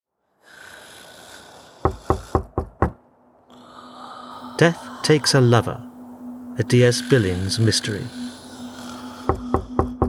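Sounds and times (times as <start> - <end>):
firm knocking on a door: 1.8 - 3.0, 9.3 - 10.0
low constant hum: 2.8 - 10.0
speech: 4.6 - 5.9, 6.6 - 8.2.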